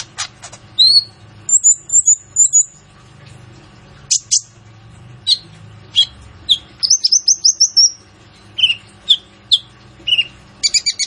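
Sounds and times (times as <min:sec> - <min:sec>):
Van Hasselt's sunbird song: 0:00.8 - 0:02.8, 0:05.2 - 0:08.0, 0:08.6 - 0:11.0.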